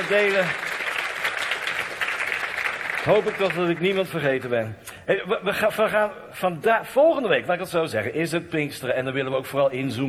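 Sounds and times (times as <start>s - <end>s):
speech: 0.0s - 0.7s, 3.0s - 10.0s
crowd applause: 0.0s - 4.6s.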